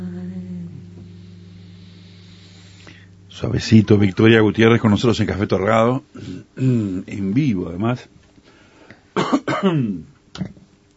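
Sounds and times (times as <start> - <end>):
speech: 3.3 - 8.2, 9.6 - 10.5
raspy cough: 9.2 - 10.0.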